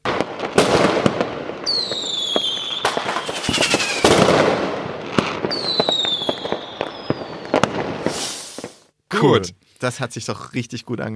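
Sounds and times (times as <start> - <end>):
fireworks crackling bangs in a dense barrage: 0.0 - 8.9
speech: 9.2 - 11.1.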